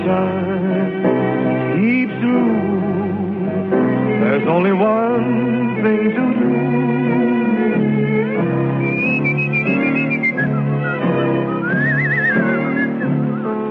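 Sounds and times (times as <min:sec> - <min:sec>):
full instrumental backing music: 0:00.0 - 0:13.6
speech: 0:00.1 - 0:01.1
person whistling a wavering vibrato-laden melody: 0:08.8 - 0:13.6.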